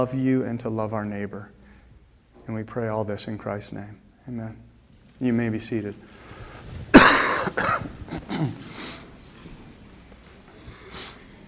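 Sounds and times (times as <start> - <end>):
speech: 0.0 - 1.6, 2.5 - 6.8, 8.4 - 8.9
quiet breathy sounds: 1.6 - 2.2, 6.1 - 6.9, 8.6 - 9.1, 10.6 - 11.4
person coughing: 6.9 - 8.8
throat clearing: 6.9 - 8.8.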